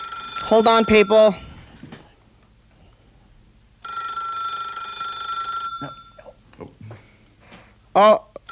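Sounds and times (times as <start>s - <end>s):
electronic telephones ringing with donation calls: 0.0s - 1.4s, 3.8s - 6.2s
speech: 0.4s - 1.5s, 8.0s - 8.2s.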